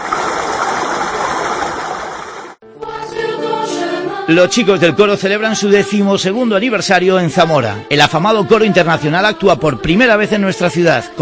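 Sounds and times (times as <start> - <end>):
steady rush of flowing stream water: 0.0 - 2.6
bright tonal music: 2.6 - 11.2
speech: 4.3 - 11.2.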